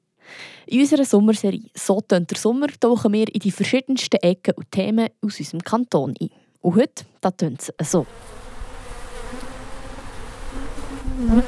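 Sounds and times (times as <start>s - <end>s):
speech: 0.7s - 8.4s, 11.2s - 11.4s
honeybee passing close: 8.0s - 11.4s
swarm of honeybees buzzing: 8.0s - 11.4s.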